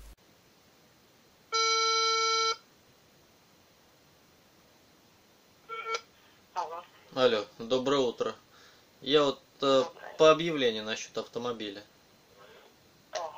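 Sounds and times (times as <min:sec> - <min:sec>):
faint hiss: 0:00.0 - 0:13.3
electronic telephone tones as a call is placed: 0:05.7 - 0:06.1
speech: 0:07.2 - 0:08.4, 0:09.0 - 0:11.9.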